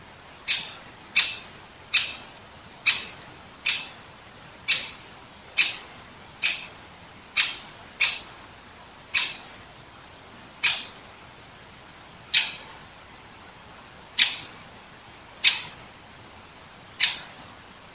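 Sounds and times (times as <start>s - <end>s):
Great Spotted Woodpecker Dendrocopos major kick calls: 0.5s - 4.1s, 4.7s - 6.8s, 7.4s - 8.4s, 9.1s - 9.6s, 10.6s - 11.1s, 12.3s - 12.8s, 14.2s - 14.6s, 15.4s - 15.9s, 17.0s - 17.5s.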